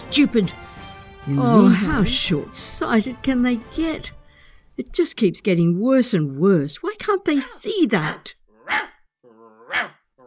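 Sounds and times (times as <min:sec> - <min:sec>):
speech: 0:00.1 - 0:00.6, 0:01.2 - 0:04.2, 0:04.8 - 0:08.9, 0:09.7 - 0:10.0
dog barking: 0:07.4 - 0:10.2.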